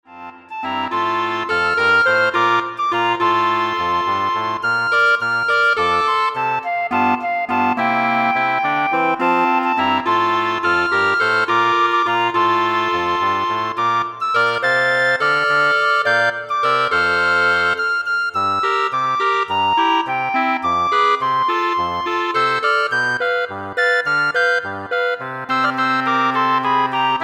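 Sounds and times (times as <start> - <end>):
woodwind ensemble: 0.1 - 27.2.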